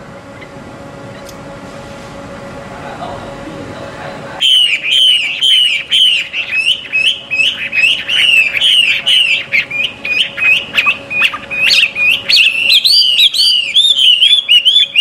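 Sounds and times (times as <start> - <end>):
steady faint hum: 0.0 - 14.9
Chinese hwamei song of loud clear whistled notes at a bird gathering: 4.4 - 14.9.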